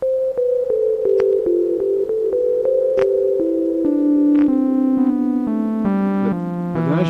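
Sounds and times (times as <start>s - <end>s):
plain electronic synthesizer tone with reverb: 0.0s - 7.0s
speech: 3.0s - 3.2s.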